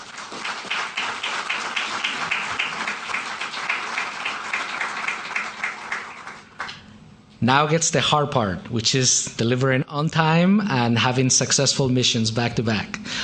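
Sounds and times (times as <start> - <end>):
crowd applauding: 0.0 - 6.8
speech: 7.4 - 13.2.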